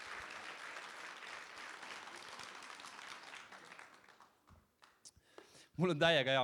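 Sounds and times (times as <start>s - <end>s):
crowd applauding: 0.0s - 5.0s
speech: 5.8s - 6.4s.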